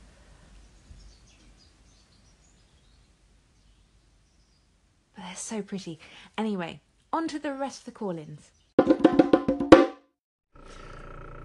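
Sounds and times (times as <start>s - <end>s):
steady outdoor hiss: 0.0s - 7.1s
small round birds singing at the top of a tree at sunset: 0.5s - 4.7s, 7.9s - 8.8s
speech: 5.3s - 8.6s.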